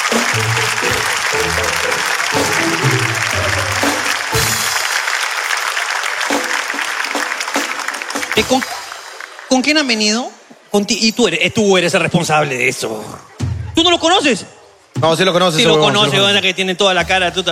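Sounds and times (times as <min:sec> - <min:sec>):
people cheering: 0:00.0 - 0:10.1
crowd clapping: 0:00.0 - 0:10.2
speech: 0:08.4 - 0:08.7, 0:09.5 - 0:17.5.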